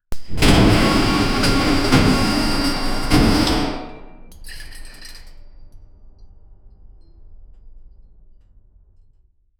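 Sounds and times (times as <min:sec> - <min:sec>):
realistic industrial factory noise: 0:00.2 - 0:04.3.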